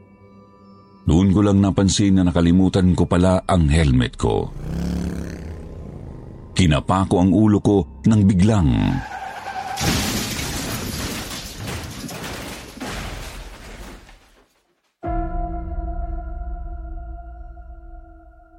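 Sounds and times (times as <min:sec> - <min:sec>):
speech: 0:01.1 - 0:04.8, 0:06.6 - 0:09.1
skidding and grinding after a truck crash: 0:04.3 - 0:06.7, 0:08.7 - 0:14.6
glass shattering in a truck crash: 0:09.4 - 0:14.5
loud crash of a 10-wheeler truck hitting a rider: 0:09.7 - 0:14.4.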